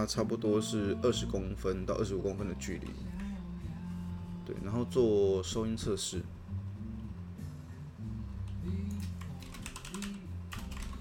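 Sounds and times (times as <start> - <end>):
speech: 0.0 - 3.2, 4.5 - 6.4
steady low tonal background: 0.0 - 11.0
computer keyboard typing: 8.9 - 11.0.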